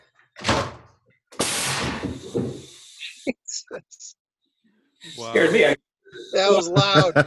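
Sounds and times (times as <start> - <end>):
air cannon firing a baseball into a catcher's helmet: 1.4 - 2.4
long rushing hiss of released air: 1.4 - 3.1
speech: 3.2 - 4.2, 5.0 - 7.2
laughter: 6.4 - 7.2.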